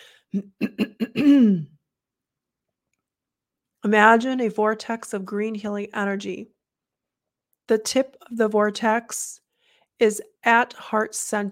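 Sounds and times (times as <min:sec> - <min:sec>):
speech: 0:00.3 - 0:01.7, 0:03.8 - 0:06.6, 0:07.7 - 0:09.4, 0:10.0 - 0:11.5
person clearing throat: 0:00.4 - 0:01.8.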